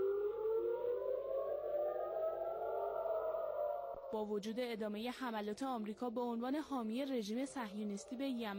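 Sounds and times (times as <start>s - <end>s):
air raid warning siren wailing: 0.0s - 4.4s
speech: 4.1s - 8.5s.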